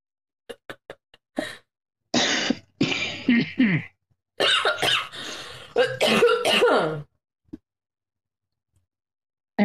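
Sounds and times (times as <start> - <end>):
person coughing forcefully: 2.2 - 7.0
speech: 3.3 - 4.5, 5.8 - 7.1.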